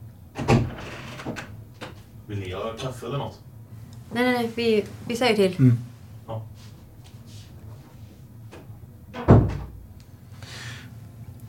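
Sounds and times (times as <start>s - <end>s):
door opening or shutting with a soft thump: 0.4s - 2.0s, 8.5s - 10.0s
speech: 2.3s - 3.5s, 4.1s - 6.7s.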